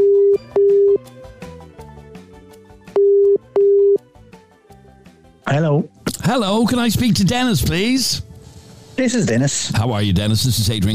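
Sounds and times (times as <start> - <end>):
telephone ringing tone on an outgoing call: 0.0 - 1.0, 3.0 - 4.0
soft music: 0.0 - 10.9
speech: 5.5 - 8.3, 9.0 - 10.9.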